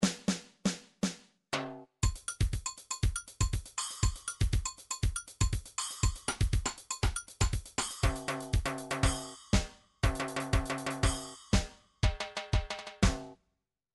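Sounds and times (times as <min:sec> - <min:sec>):
MIDI samba drum patterns: 0:00.0 - 0:13.4.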